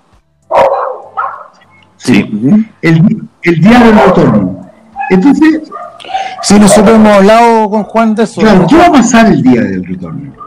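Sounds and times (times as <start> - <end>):
dog barking: 0.5 - 1.6, 3.9 - 7.4
speech: 2.0 - 10.4.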